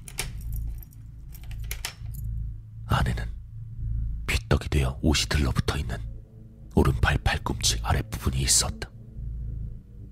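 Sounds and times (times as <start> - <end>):
keys jangling while unlocking a storage locker: 0.0 - 2.4
low steady hum: 0.0 - 10.0
speech: 2.9 - 3.4, 4.5 - 6.1, 6.8 - 8.9.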